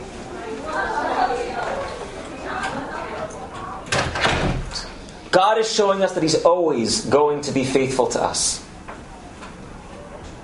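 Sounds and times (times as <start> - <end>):
room full of indistinct chatter: 0.0 - 10.4
door being pulled shut: 3.5 - 5.0
speech: 5.4 - 8.6.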